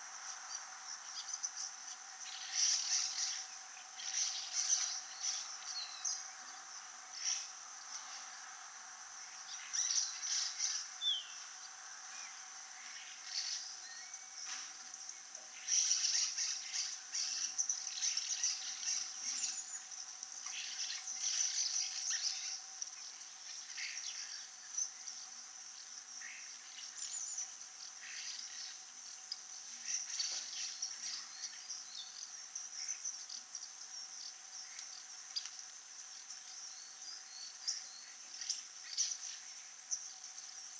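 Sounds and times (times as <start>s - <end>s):
spotless starling Sturnus unicolor birdsong: 0.0s - 8.4s, 9.1s - 40.7s.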